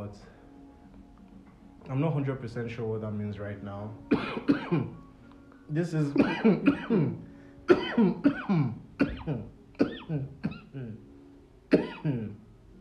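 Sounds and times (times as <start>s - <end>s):
speech: 0.1s - 0.3s, 1.9s - 5.0s, 5.7s - 7.3s, 8.0s - 9.5s
person coughing: 4.1s - 5.0s, 6.0s - 11.0s, 11.7s - 12.4s
throat clearing: 6.1s - 11.0s, 11.7s - 12.4s.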